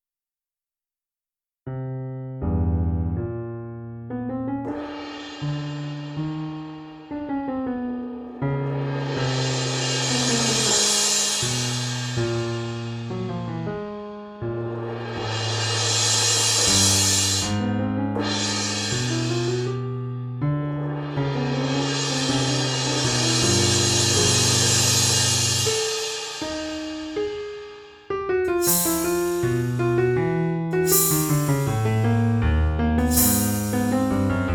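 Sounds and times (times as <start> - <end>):
piano: 1.7 - 34.5
cymbal: 4.7 - 7.3, 8.6 - 13.6, 14.5 - 19.9, 20.8 - 30.0, 30.7 - 32.1, 33.0 - 34.5.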